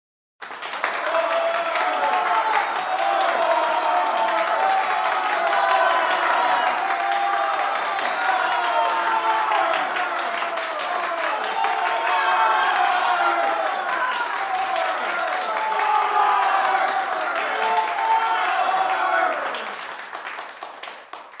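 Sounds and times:
crowd applauding: 0.4 - 21.3.

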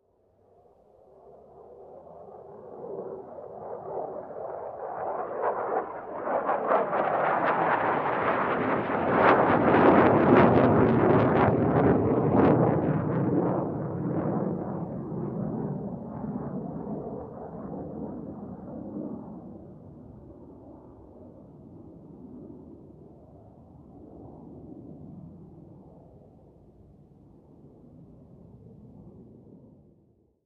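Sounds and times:
commercial aircraft flying over: 0.9 - 26.7.

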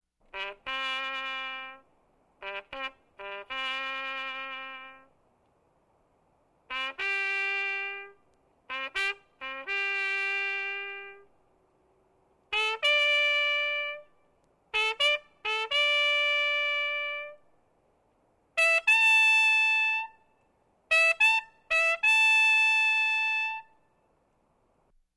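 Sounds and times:
trumpet bugle call: 0.3 - 5.2, 6.7 - 11.4, 12.5 - 17.5, 18.6 - 24.0.

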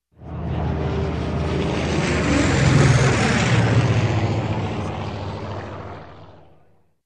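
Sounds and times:
old big propeller aircraft passing by: 0.2 - 6.9.

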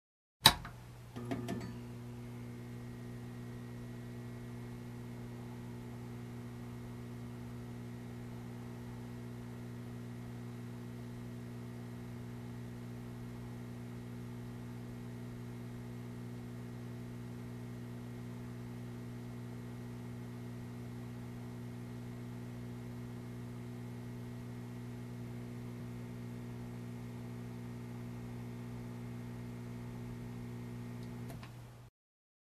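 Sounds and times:
switch clicking on: 0.4 - 1.7
quiet buzz: 0.4 - 31.9.

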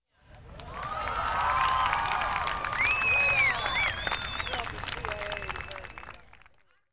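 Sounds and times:
audience watching a game cheering: 0.5 - 6.4.

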